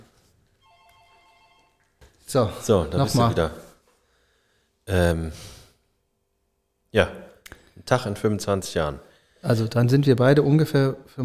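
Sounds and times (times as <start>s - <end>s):
telephone ringing with a steady electronic tone: 0.6s - 2.0s
speech: 2.3s - 3.6s, 4.9s - 5.5s, 6.9s - 7.2s, 7.9s - 11.2s.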